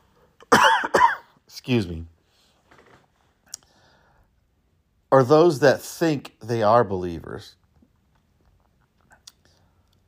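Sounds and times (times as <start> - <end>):
person coughing: 0.4 - 1.4
speech: 1.6 - 2.1, 5.1 - 7.6.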